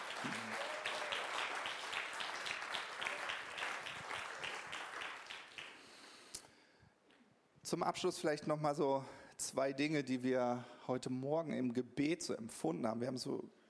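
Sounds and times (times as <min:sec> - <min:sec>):
audience applause: 0:00.0 - 0:05.9
speech: 0:07.7 - 0:13.6.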